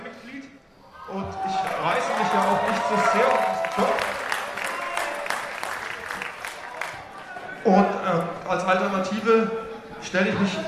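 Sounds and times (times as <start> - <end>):
large audience booing a political party bloc: 1.1 - 7.7
speech: 9.1 - 10.6.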